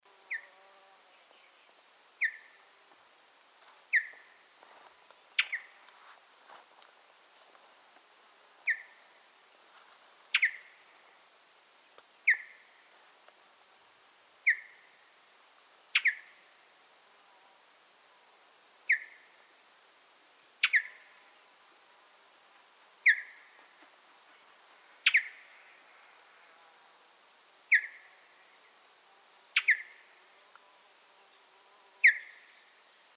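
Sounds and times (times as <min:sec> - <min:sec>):
Mountain Bluebird Sialia currucoides: 0:00.3 - 0:02.8, 0:03.8 - 0:06.0, 0:08.6 - 0:09.3, 0:10.3 - 0:11.2, 0:11.8 - 0:13.0, 0:14.4 - 0:15.1, 0:15.9 - 0:16.6, 0:18.9 - 0:19.5, 0:20.6 - 0:21.6, 0:23.0 - 0:26.5, 0:27.6 - 0:33.1.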